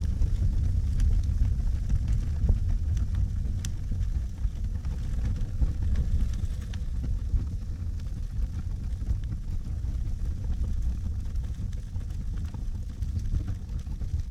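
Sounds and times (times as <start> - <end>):
fire ambience: 0.0 - 14.2.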